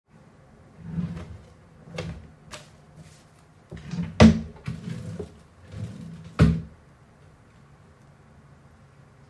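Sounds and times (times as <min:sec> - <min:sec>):
desk drawers opening and closing: 0:00.8 - 0:06.8.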